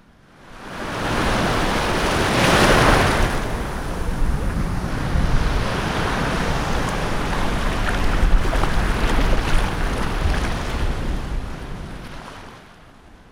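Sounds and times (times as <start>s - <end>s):
giant ocean surf crashing at a coastal town in Portugal: 0.5s - 12.8s
wind rumble: 1.1s - 12.2s.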